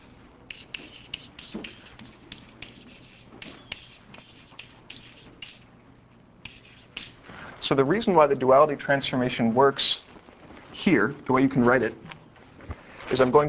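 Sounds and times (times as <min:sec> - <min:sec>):
marker or chalk scraping across a board: 0:00.0 - 0:05.6, 0:06.4 - 0:07.2
low noise: 0:00.0 - 0:13.4
speech: 0:07.6 - 0:10.0, 0:10.8 - 0:12.1, 0:13.1 - 0:13.4.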